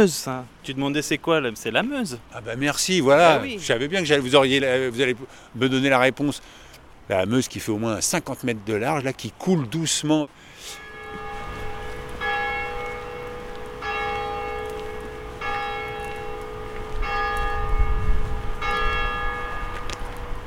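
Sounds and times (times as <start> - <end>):
speech: 0.0 - 10.8
church bell tolling six o'clock: 10.7 - 20.4.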